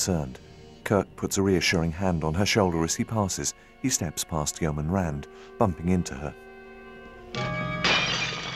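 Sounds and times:
speech: 0:00.0 - 0:06.4, 0:07.3 - 0:07.7
glass flask dropped and shattering on the floor: 0:07.4 - 0:08.5
tinkling glass flask fragments: 0:07.4 - 0:08.5.

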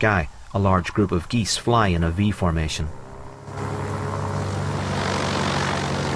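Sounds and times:
speech: 0:00.0 - 0:03.0
propeller plane engine taxiing along a dusty runway: 0:01.9 - 0:06.1.

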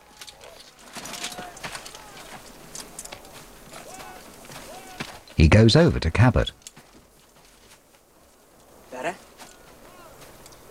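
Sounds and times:
horse hooves clip-clopping at an uneven pace: 0:00.0 - 0:05.4, 0:06.0 - 0:10.6
ambient outdoor noise: 0:00.0 - 0:10.6
speech: 0:05.4 - 0:06.6.

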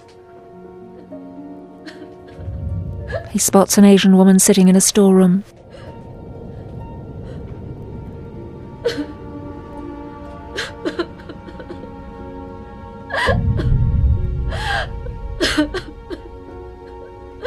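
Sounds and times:
woman sobbing in a convenience store: 0:00.9 - 0:02.5, 0:08.8 - 0:09.3, 0:10.5 - 0:12.0, 0:13.1 - 0:17.4
low rumbling noise: 0:02.3 - 0:04.8, 0:05.6 - 0:10.5, 0:13.2 - 0:17.4
speech: 0:03.2 - 0:05.6.

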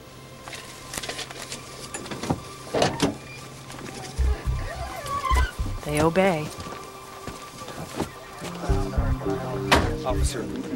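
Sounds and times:
car power window motor whirring down: 0:02.1 - 0:05.9
faint low rumble: 0:04.0 - 0:06.4, 0:08.6 - 0:10.4
speech: 0:05.9 - 0:06.6, 0:10.1 - 0:10.7.

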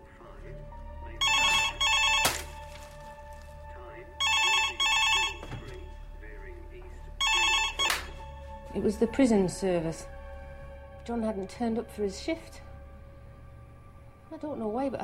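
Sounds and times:
telephone ringing in a classic double-burst pattern: 0:01.2 - 0:02.7, 0:04.2 - 0:05.8, 0:07.2 - 0:08.2
speech: 0:08.8 - 0:10.2, 0:11.1 - 0:12.6, 0:14.4 - 0:15.0.

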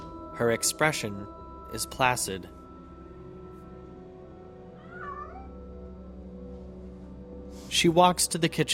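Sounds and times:
speech: 0:00.4 - 0:02.6, 0:07.8 - 0:08.7
tabby cat meowing on a kitchen island: 0:04.8 - 0:05.7.

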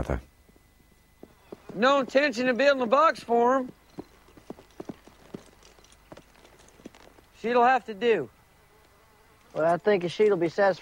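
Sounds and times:
speech: 0:00.0 - 0:00.3, 0:01.8 - 0:03.8, 0:07.4 - 0:08.4, 0:09.5 - 0:10.7
horse hooves clip-clopping on a hard surface: 0:01.2 - 0:07.7.

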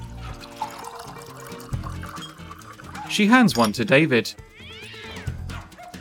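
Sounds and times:
brandy poured into glasses: 0:00.0 - 0:03.8
quiet music: 0:00.0 - 0:05.9
speech: 0:03.1 - 0:04.5.

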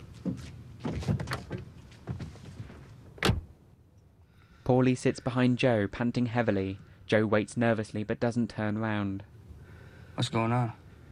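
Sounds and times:
rustling movements: 0:00.0 - 0:03.1
car back door opening as someone climbs in: 0:00.3 - 0:03.5
speech: 0:04.7 - 0:09.3, 0:10.2 - 0:10.8.

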